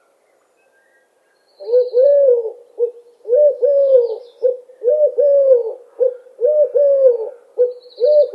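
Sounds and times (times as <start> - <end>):
Eurasian collared dove repeating its three-note coo: 1.6 - 8.3.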